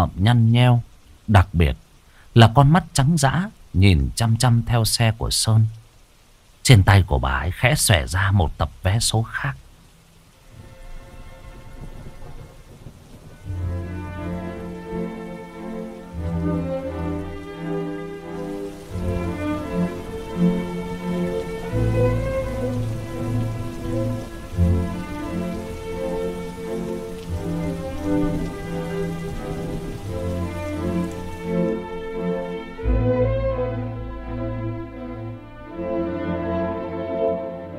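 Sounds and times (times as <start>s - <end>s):
speech: 0.0s - 1.8s, 2.4s - 5.8s, 6.7s - 9.6s
rain falling: 0.0s - 37.7s
low tonal drone: 19.0s - 36.8s.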